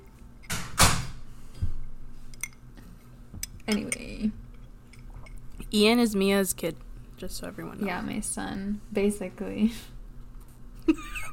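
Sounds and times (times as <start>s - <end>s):
door swinging shut with thud: 0.5s - 1.2s
speech: 3.7s - 4.4s, 5.7s - 9.9s, 10.9s - 11.3s.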